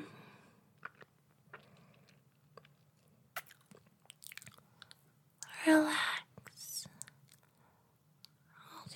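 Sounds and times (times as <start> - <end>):
person chewing while tasting a dip: 0.8 - 5.0
crunchy mouth clicks and smacks: 0.8 - 5.5, 6.4 - 7.6.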